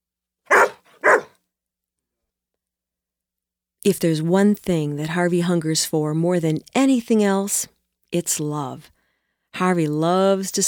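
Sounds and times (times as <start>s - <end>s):
dog barking: 0.5s - 1.3s
speech: 3.8s - 10.6s.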